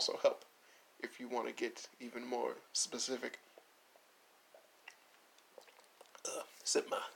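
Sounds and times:
speech: 0.0 - 3.5, 6.3 - 7.1
wet mouth clicks: 3.6 - 6.3
slurping sips of apple juice: 5.6 - 6.6.

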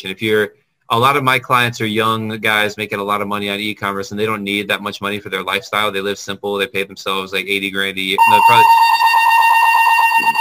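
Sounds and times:
speech: 0.0 - 8.9
fire alarm blaring: 8.2 - 10.3.

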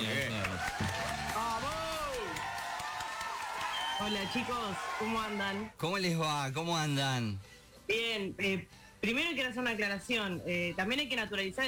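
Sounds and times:
studio audience applause: 0.0 - 5.5
whoops and cheering voices: 0.5 - 5.4
speech: 4.0 - 11.6.

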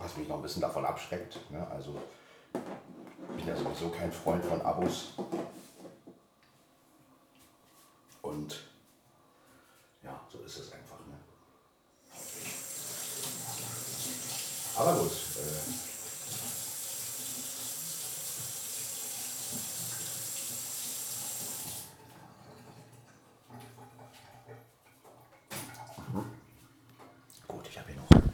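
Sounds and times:
speech: 0.2 - 5.6, 8.3 - 8.7
hot water running from a tap: 12.1 - 21.9
clinks and handling noises: 28.1 - 28.3.

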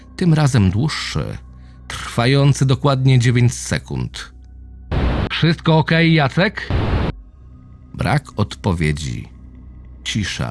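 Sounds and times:
speech: 0.2 - 1.5, 2.2 - 4.3, 5.4 - 6.9, 8.0 - 9.3, 10.0 - 10.4
low hum: 4.9 - 5.3, 6.7 - 7.2
walkie-talkie radio static burst: 4.9 - 5.3, 6.7 - 7.2.

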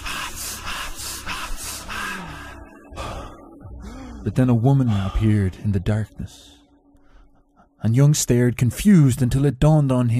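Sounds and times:
sharp breathy wheezy gasps: 0.0 - 5.4
speech: 4.2 - 6.6, 7.8 - 10.1.

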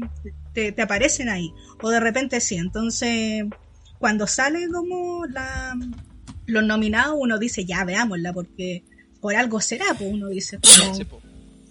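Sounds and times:
speech: 0.0 - 11.3
person sneezing: 10.6 - 11.0.

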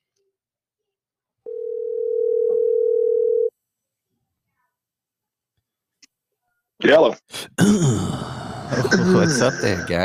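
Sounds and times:
phone ringback tone heard through the line: 1.5 - 3.5
speech: 6.9 - 10.0
laughter: 8.5 - 10.0.

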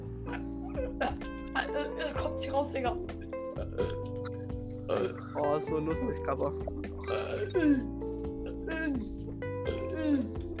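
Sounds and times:
strained croaky forced burps: 0.2 - 2.2, 3.4 - 5.5, 7.0 - 9.1, 9.7 - 10.5
speech: 1.0 - 4.1, 4.9 - 6.7, 7.5 - 7.9, 8.7 - 9.2, 10.0 - 10.4.

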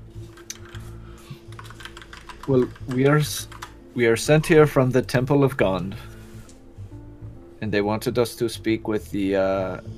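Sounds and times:
fast typing on computer keyboards: 0.3 - 0.8, 1.5 - 3.8
speech: 2.5 - 6.1, 7.6 - 9.9.

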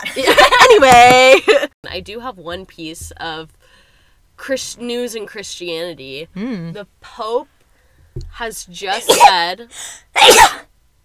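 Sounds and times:
speech: 0.2 - 3.8, 4.4 - 7.6, 8.2 - 10.6
loud sneeze: 9.0 - 9.4, 10.1 - 10.7.

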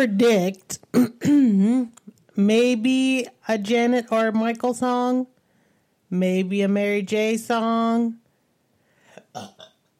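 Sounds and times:
speech: 0.0 - 5.3, 6.1 - 8.2, 9.3 - 9.7
short voiced burp: 9.2 - 9.9.

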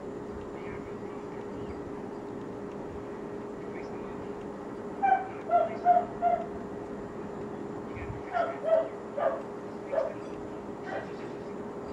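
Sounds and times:
low steady hum: 0.0 - 11.9
neighbor's dog barking: 5.0 - 6.5, 8.3 - 10.2.

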